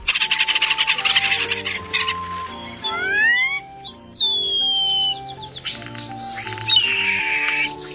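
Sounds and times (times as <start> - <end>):
European starling song with rattling clicks, sliding whistles and gurgling chatter: 0.0 - 7.9
soft background music: 0.0 - 7.9.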